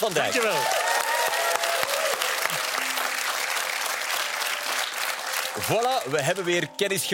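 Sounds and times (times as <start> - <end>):
speech: 0.0 - 0.9, 5.6 - 7.1
audience applause: 0.0 - 6.6.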